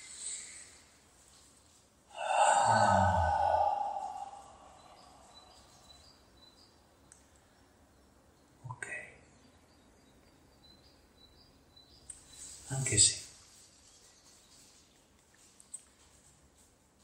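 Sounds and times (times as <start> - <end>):
soft rustle: 0.0 - 2.1, 12.2 - 17.0
faint high insect-like chirping: 0.0 - 16.3
deep breath drawn and released: 2.1 - 5.7
speech: 12.9 - 13.2.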